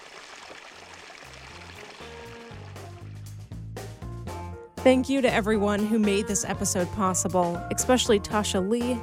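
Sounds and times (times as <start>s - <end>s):
group splashing in hot spring water amid autumn reeds: 0.0s - 3.2s
speech: 4.8s - 9.0s.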